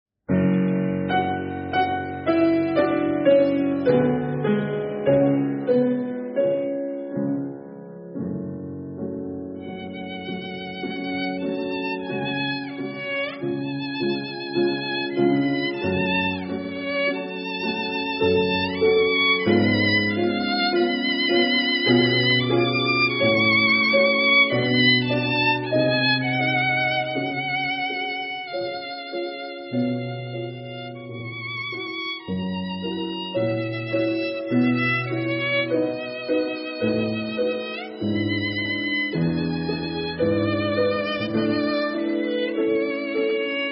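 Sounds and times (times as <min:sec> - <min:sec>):
violin: 0:00.3 - 0:43.7.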